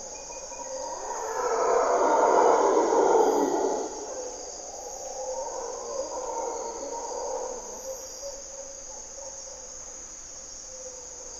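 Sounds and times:
high insects droning: 0:00.0 - 0:11.3
mantled howler monkeys roaring at morning twilight in Costa Rica forest: 0:00.5 - 0:08.2.

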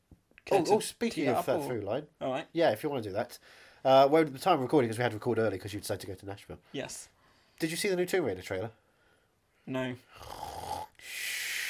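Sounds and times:
speech: 0:00.5 - 0:08.8, 0:09.6 - 0:10.4
person faking a snore: 0:10.1 - 0:11.6.

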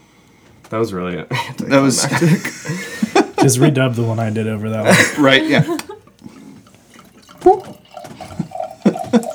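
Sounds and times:
speech: 0:00.7 - 0:05.8
laughter: 0:01.3 - 0:06.1, 0:08.8 - 0:09.3
lambic beer glugging and splashing as it is poured from a bottle: 0:03.4 - 0:09.3.

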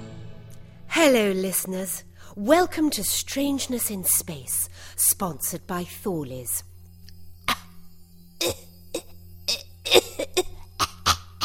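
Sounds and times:
steady low hum: 0:00.2 - 0:11.4
speech: 0:01.0 - 0:06.7, 0:08.4 - 0:08.7
harsh coughing fit: 0:08.4 - 0:11.4.

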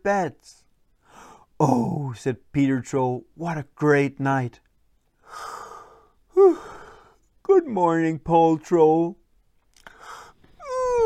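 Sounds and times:
speech: 0:00.0 - 0:00.6, 0:01.6 - 0:04.6, 0:06.4 - 0:06.8, 0:07.5 - 0:09.2
person performing an exaggerated yawn: 0:06.3 - 0:07.2, 0:10.0 - 0:11.0.

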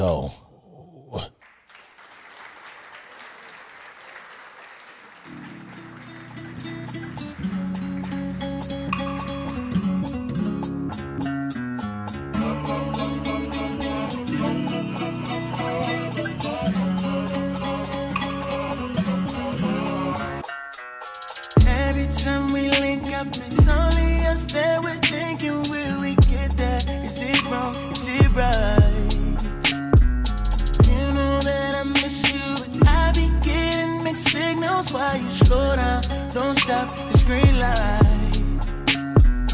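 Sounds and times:
speech: 0:00.0 - 0:00.4, 0:01.1 - 0:01.4
loud music track with steady beats and rich harmonic layers: 0:05.6 - 0:39.5.

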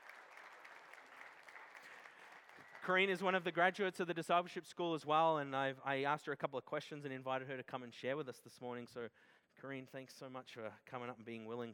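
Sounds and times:
audience at a service applauding: 0:00.0 - 0:03.2
speech: 0:02.9 - 0:11.7.

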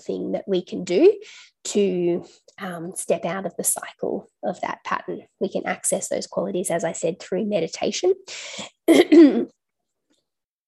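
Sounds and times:
speech: 0:00.0 - 0:09.6
harsh double cough: 0:08.9 - 0:09.5.

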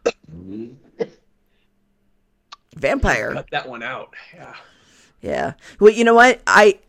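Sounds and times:
person coughing: 0:01.0 - 0:01.2
speech: 0:02.8 - 0:06.8.

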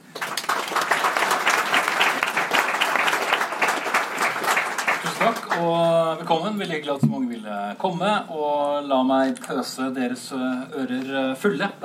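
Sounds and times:
audience applause: 0:00.0 - 0:05.7
speech: 0:05.2 - 0:11.8.

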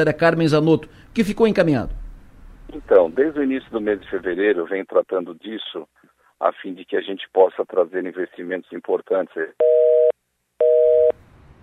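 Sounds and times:
speech: 0:00.0 - 0:02.0, 0:02.7 - 0:09.9
telephone busy tone beeps after a dropped call: 0:09.6 - 0:11.2.

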